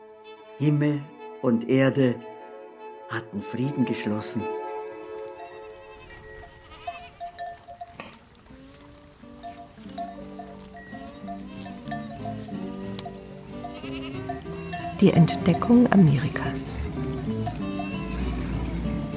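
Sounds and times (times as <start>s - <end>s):
speech: 0.6s - 2.3s, 3.1s - 4.6s, 15.0s - 16.8s
goats bleating: 5.1s - 19.1s.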